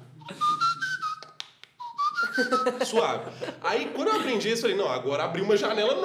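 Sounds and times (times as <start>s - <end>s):
laughter: 0.2s - 1.0s, 2.2s - 4.5s
soft low-volume breathy whistle: 0.2s - 2.8s
speech: 2.4s - 6.0s.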